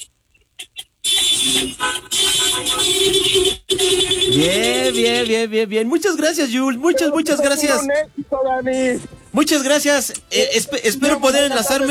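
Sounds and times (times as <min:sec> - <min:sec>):
car horns honking from vehicles lined up in a restaurant parking lot: 0:00.6 - 0:05.5, 0:06.7 - 0:11.8
speech: 0:04.4 - 0:11.8.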